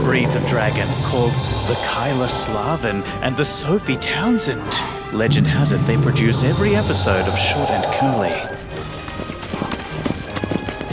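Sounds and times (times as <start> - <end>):
speech: 0.1 - 8.7
herd of galloping hooves: 7.8 - 10.9.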